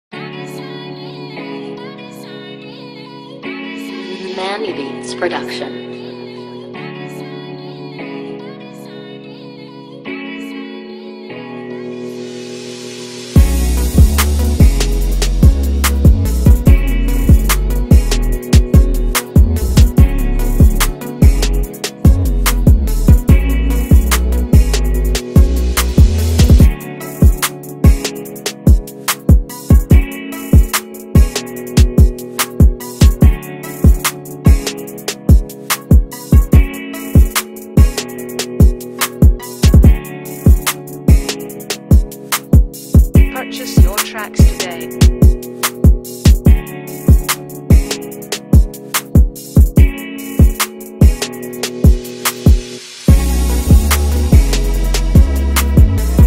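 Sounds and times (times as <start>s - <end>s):
trap beat instrumental: 13.4s - 56.2s.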